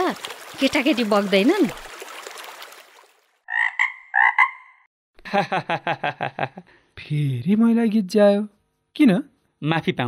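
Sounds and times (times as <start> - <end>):
speech: 0.2 - 1.9, 5.3 - 10.0
frog croaking: 3.5 - 4.9
laughter: 5.2 - 6.7.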